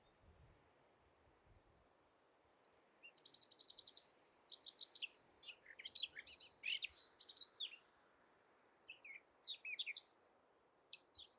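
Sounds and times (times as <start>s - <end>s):
Eurasian blackcap Sylvia atricapilla singing: 2.5s - 7.8s, 8.9s - 10.1s, 10.9s - 11.3s.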